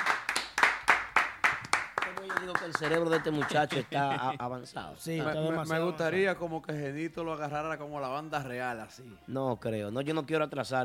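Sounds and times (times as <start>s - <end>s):
rhythmic hand clapping: 0.0s - 4.2s
speech: 2.4s - 10.8s.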